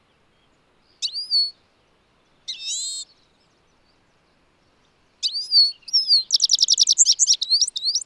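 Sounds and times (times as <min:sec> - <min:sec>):
European goldfinch Carduelis carduelis calling: 0:05.3 - 0:08.0.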